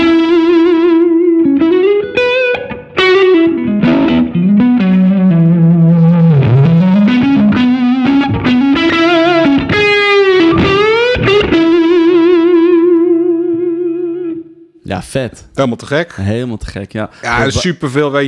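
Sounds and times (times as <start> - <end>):
overdriven electric guitar with gain raised by expression pedal: 0.0 - 14.5
speech: 15.2 - 18.2.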